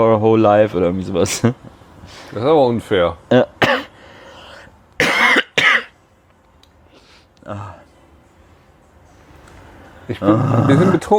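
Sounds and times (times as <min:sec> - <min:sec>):
speech: 0:00.0 - 0:03.6, 0:10.1 - 0:11.1
person coughing: 0:03.6 - 0:03.9, 0:05.0 - 0:06.0.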